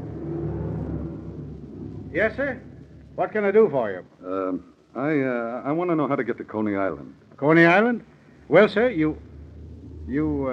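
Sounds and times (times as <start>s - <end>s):
large car engine rumbling while pulling up at the end of the Brooklyn Bridge: 0.0s - 3.3s, 8.8s - 10.5s
speech: 2.1s - 9.3s, 10.1s - 10.5s.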